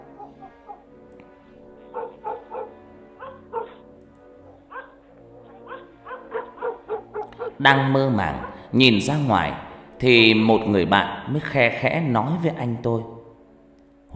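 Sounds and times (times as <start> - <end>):
dog barking in the distance in a village lane late at night: 0.0 - 0.9, 1.7 - 7.7, 8.3 - 8.7
speech: 7.6 - 13.1.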